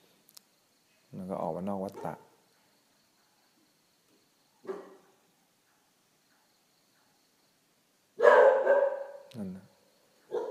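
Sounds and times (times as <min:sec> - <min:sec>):
speech: 0:01.2 - 0:02.3, 0:09.4 - 0:09.7
dog barking: 0:01.9 - 0:02.4, 0:04.6 - 0:07.2, 0:08.2 - 0:09.3, 0:10.3 - 0:10.5.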